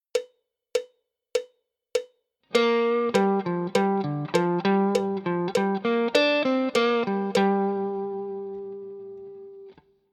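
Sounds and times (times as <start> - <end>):
G minor pentatonic guitar lick: 2.5 - 9.9.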